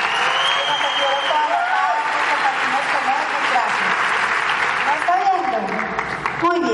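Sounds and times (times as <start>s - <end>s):
cheering: 0.0s - 5.2s
audience clapping: 0.0s - 6.6s.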